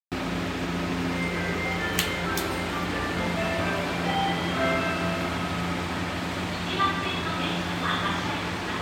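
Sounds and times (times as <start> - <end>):
Rokko Liner automated train departing Sumiyoshi-minami in Kobe: 0.2 - 8.8.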